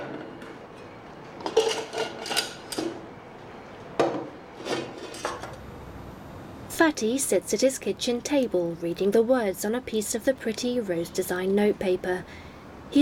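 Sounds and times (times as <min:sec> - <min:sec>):
dishes and cutlery clinking, knocking and scraping: 0:01.4 - 0:03.0, 0:04.6 - 0:05.6
speech: 0:06.8 - 0:13.0.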